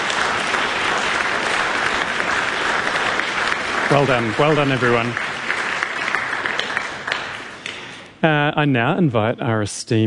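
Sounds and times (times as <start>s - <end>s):
large audience applause: 0.0s - 7.9s
speech: 3.9s - 5.3s, 8.2s - 10.0s.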